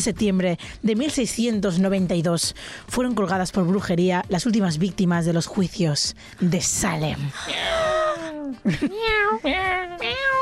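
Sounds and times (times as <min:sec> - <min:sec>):
speech: 0:00.0 - 0:10.4
person imitating cat meows for foley: 0:07.4 - 0:10.4.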